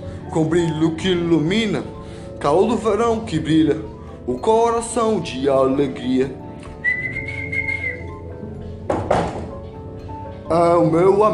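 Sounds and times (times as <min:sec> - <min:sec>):
speech: 0:00.3 - 0:06.4, 0:10.5 - 0:11.3
small bird whistling: 0:06.8 - 0:08.1.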